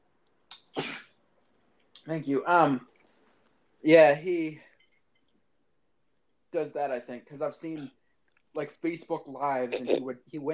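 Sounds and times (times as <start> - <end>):
person sneezing: 0.5 - 1.1, 9.7 - 10.1
speech: 2.0 - 2.9, 3.8 - 4.7, 6.5 - 8.0, 8.6 - 10.5.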